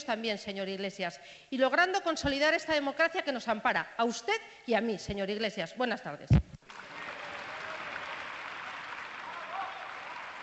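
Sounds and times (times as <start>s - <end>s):
speech: 0.0s - 6.8s
large audience applauding in parliament after a speech: 6.7s - 10.4s.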